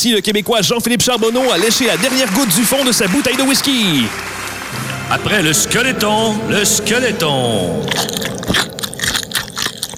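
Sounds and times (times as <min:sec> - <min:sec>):
speech: 0:00.0 - 0:08.7
biting and crunching on chicken wings during an eating contest: 0:07.9 - 0:09.9
wet crackly chewing: 0:07.9 - 0:09.9.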